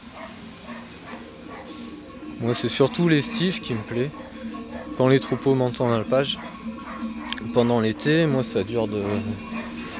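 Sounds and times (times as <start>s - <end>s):
low steady noise: 0.0s - 9.9s
dog barking: 0.1s - 1.8s, 4.7s - 5.6s, 6.3s - 7.4s, 9.0s - 9.9s
speech: 2.4s - 4.3s, 5.0s - 6.7s, 7.6s - 9.6s.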